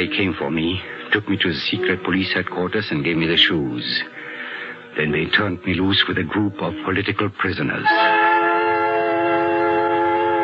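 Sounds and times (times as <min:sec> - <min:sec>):
speech: 0:00.0 - 0:04.2, 0:05.0 - 0:08.2
train at a railway station droning like a sustained whistle: 0:07.8 - 0:10.4.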